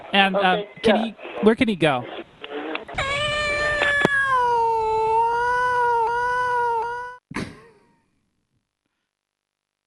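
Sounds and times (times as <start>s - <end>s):
speech: 0.1s - 2.2s
cat yowling: 2.9s - 7.2s.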